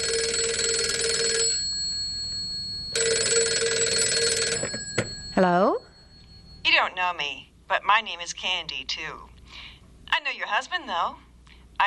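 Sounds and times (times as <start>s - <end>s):
telephone ringing with a trilling bell: 0.0s - 7.4s
speech: 5.4s - 5.8s, 7.0s - 9.3s, 10.2s - 11.2s.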